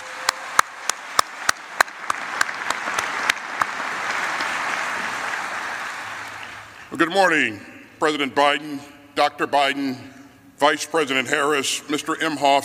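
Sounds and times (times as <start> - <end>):
large audience applause: 0.0 - 6.9
speech: 6.9 - 12.6.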